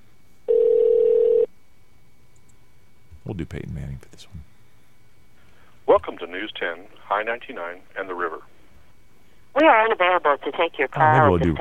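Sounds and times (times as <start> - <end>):
telephone ring tone from a call to a desk line: 0.5 - 1.5
speech: 3.4 - 4.6, 5.9 - 8.5, 9.5 - 11.5.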